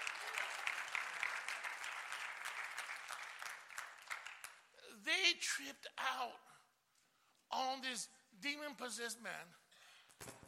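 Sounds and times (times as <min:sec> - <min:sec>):
audience clapping and applauding: 0:00.0 - 0:04.6
speech: 0:05.3 - 0:06.5, 0:07.5 - 0:09.6, 0:10.2 - 0:10.4.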